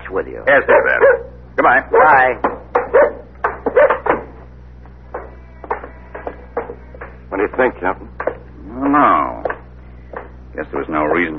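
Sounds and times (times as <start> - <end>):
low steady hum: 0.0 - 11.3
speech: 0.1 - 3.1, 7.5 - 9.4, 10.6 - 11.3
dog barking: 0.5 - 2.2, 2.8 - 4.2.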